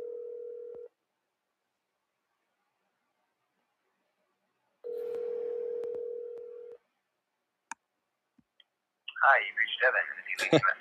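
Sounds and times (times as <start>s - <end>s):
telephone call tones as someone places a call: 0.0s - 0.9s, 4.8s - 6.8s
speech: 9.2s - 10.8s.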